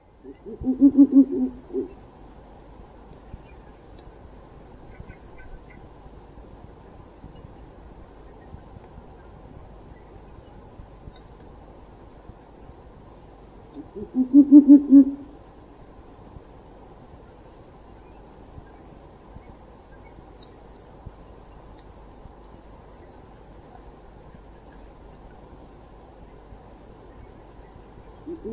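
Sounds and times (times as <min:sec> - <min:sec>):
owl hooting: 0:00.2 - 0:02.0, 0:13.8 - 0:15.4, 0:28.2 - 0:28.5.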